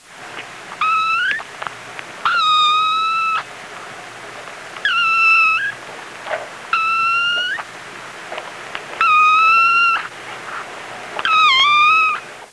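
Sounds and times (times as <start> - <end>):
baby kitten meowing: 0.8 - 1.5, 2.2 - 3.5, 4.8 - 5.8, 6.7 - 7.7, 9.0 - 10.1, 11.2 - 12.2.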